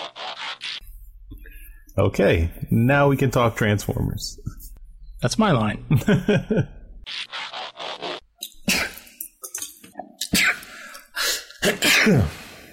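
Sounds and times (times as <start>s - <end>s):
speech: 2.0s - 4.6s, 5.2s - 6.8s, 12.0s - 12.4s
person sneezing: 8.6s - 9.1s, 10.3s - 12.7s.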